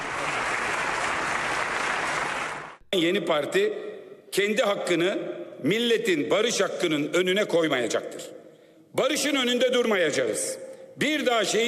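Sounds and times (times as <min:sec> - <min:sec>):
crowd applause at a political party leader's speech: 0:00.0 - 0:02.8
speech: 0:02.9 - 0:08.4, 0:09.0 - 0:11.6.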